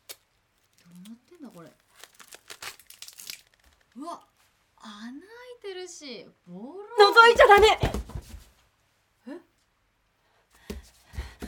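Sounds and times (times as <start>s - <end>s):
duct tape being peeled slowly off a wall: 0.0s - 4.0s
speech: 5.8s - 8.0s.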